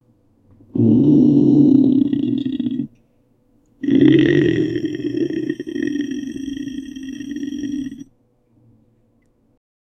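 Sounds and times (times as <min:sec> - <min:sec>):
hungry stomach growling: 0:00.8 - 0:03.0, 0:03.8 - 0:08.1.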